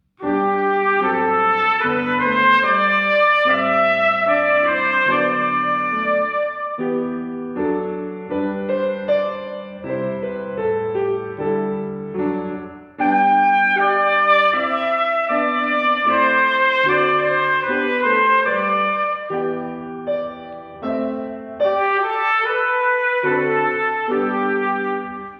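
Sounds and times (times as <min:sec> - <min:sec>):
piano: 0:00.0 - 0:25.3
trumpet: 0:00.2 - 0:07.4, 0:13.0 - 0:25.3.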